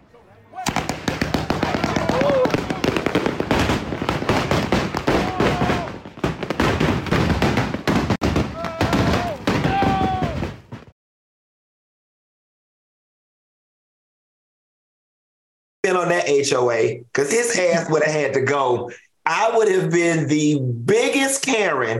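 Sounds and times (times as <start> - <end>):
fireworks set off at a house crackling and banging: 0.6 - 10.9
speech: 15.9 - 21.9.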